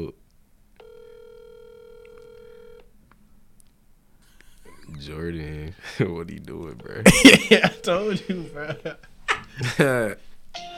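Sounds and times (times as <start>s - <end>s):
steady electronic phone call ringing tone: 0.8s - 2.9s, 6.8s - 8.8s
speech: 4.9s - 10.7s
laughter: 7.0s - 10.1s.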